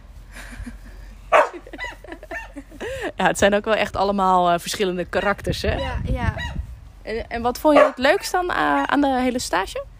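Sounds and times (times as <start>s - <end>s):
laughter: 0.4s - 3.1s
dog barking: 1.3s - 1.9s, 7.8s - 9.0s
speech: 3.1s - 9.9s.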